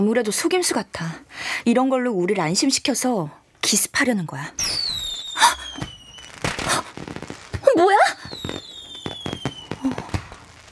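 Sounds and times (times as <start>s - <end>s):
speech: 0.0s - 4.8s
fireworks bangs and crackles in a fireworks display: 4.6s - 10.6s.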